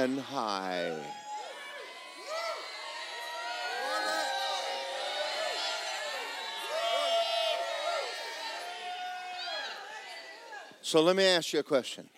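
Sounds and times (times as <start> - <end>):
speech: 0.0 - 1.2, 10.8 - 12.1
large crowd shouting and cheering: 0.0 - 11.1
scattered whoops from the crowd: 1.1 - 10.4.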